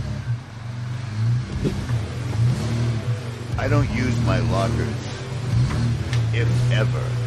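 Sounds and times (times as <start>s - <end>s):
truck engine revving climbing a waterfall over rough terrain: 0.0s - 7.2s
speech: 1.6s - 1.9s, 3.6s - 5.1s, 5.8s - 7.2s.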